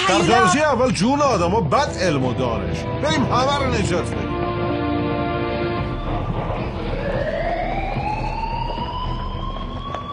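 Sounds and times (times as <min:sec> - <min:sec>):
speech: 0:00.1 - 0:04.5
loud alarm siren wailing: 0:05.7 - 0:10.0.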